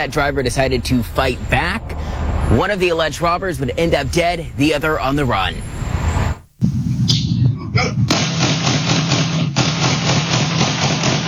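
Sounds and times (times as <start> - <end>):
speech: 0.0 - 1.9, 2.5 - 5.8
outdoor noise: 0.0 - 11.2
sharp bangs: 0.0 - 11.2
rapid gunfire pops: 8.1 - 11.2.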